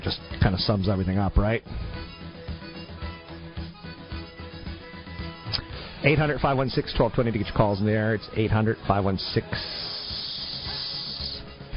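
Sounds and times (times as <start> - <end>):
speech: 0.1 - 2.1, 6.0 - 9.8
voice imitating a hissing snake: 9.5 - 11.6.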